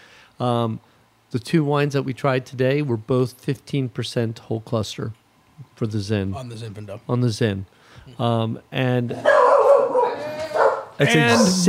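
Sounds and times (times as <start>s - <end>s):
speech: 0.4s - 9.5s, 11.0s - 11.6s
corgi barking: 9.2s - 11.6s.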